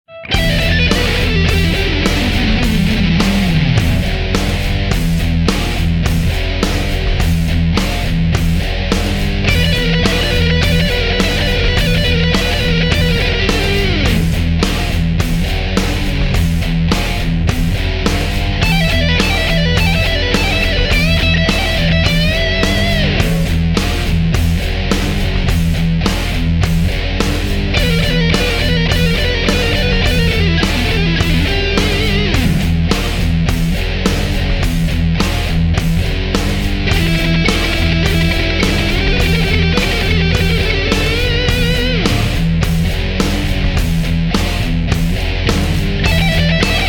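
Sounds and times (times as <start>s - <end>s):
rock pentatonic guitar riff: 0.1s - 46.8s.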